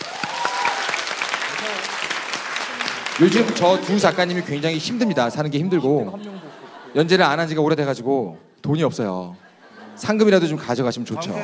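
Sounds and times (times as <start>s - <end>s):
audience applause: 0.0s - 4.8s
speech: 3.2s - 9.4s, 10.0s - 11.4s
laughter: 3.3s - 7.6s, 9.3s - 11.4s.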